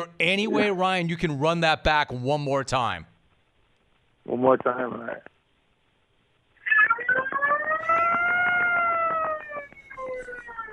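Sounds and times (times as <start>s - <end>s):
speech: 0.0s - 3.1s, 4.2s - 5.3s
person imitating a fire alarm siren with their voice: 7.2s - 10.7s.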